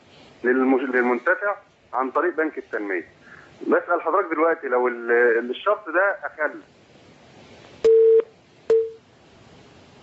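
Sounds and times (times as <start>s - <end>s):
speech: 0.4s - 6.8s
telephone busy or disconnect tone after a call drops: 7.8s - 9.0s.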